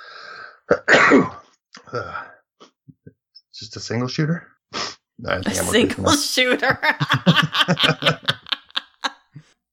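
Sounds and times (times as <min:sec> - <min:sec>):
loud sneeze: 0:00.8 - 0:01.4
speech: 0:01.9 - 0:02.2, 0:03.6 - 0:04.5, 0:05.2 - 0:08.4
sniff: 0:04.7 - 0:05.0
laughter: 0:05.5 - 0:09.3.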